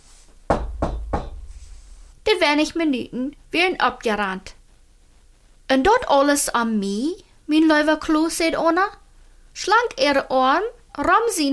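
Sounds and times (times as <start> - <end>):
firm knocking on a door: 0.5 - 1.7
speech: 2.4 - 4.6, 5.7 - 9.0, 9.6 - 11.5.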